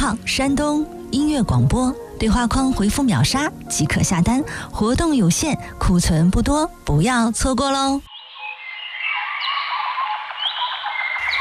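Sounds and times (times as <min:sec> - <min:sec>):
speech: 0:00.1 - 0:08.1
dense chorus of birdsong with chirps, trills and rising whistles: 0:08.1 - 0:11.3.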